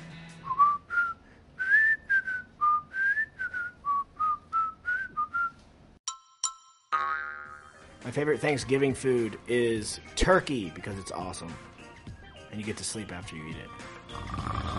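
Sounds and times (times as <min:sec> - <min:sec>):
cheerful whistled TV theme melody: 0:00.4 - 0:05.6
speech: 0:08.0 - 0:11.7, 0:12.6 - 0:14.6.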